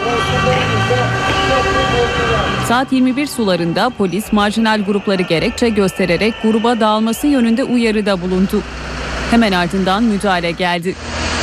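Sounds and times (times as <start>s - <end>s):
car horns honking in street traffic: 0.0s - 8.4s
murmur of crowd voices: 0.0s - 11.0s
loud steady street traffic: 0.0s - 11.4s
speech: 2.0s - 11.2s.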